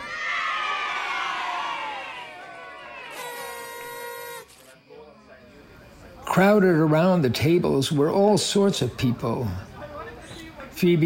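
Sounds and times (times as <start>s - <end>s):
chorus of many voices yelling in a backyard: 0.0s - 4.4s
speech: 6.4s - 9.7s, 10.8s - 11.0s.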